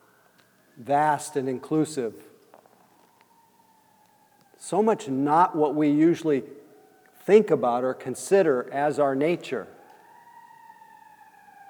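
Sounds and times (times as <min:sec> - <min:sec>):
emergency vehicle siren wailing: 0:00.0 - 0:11.6
speech: 0:00.8 - 0:02.3, 0:04.7 - 0:06.6, 0:07.2 - 0:09.8.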